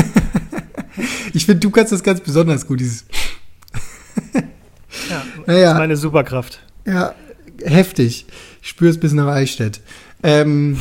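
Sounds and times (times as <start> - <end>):
laughter: 0.0 - 1.1, 3.8 - 5.5
speech: 1.0 - 3.4, 5.5 - 10.7
sharp forceful exhale through the nose: 3.1 - 3.5.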